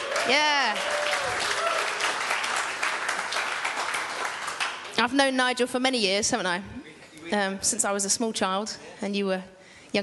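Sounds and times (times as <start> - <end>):
audience applause for a band: 0.0 - 5.0
speech: 0.3 - 0.9, 5.0 - 10.0.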